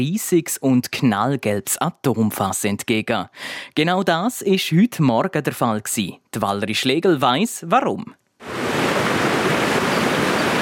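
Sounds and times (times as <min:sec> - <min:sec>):
speech: 0:00.0 - 0:08.6
Rhine river rushing through a gorge: 0:08.4 - 0:10.6.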